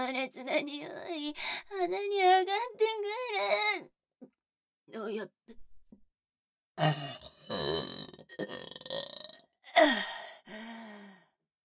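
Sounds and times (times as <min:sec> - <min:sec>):
speech: 0:00.1 - 0:04.3, 0:04.9 - 0:05.6, 0:06.8 - 0:09.1, 0:09.8 - 0:10.6
person belching deep and gurgling: 0:06.8 - 0:10.0.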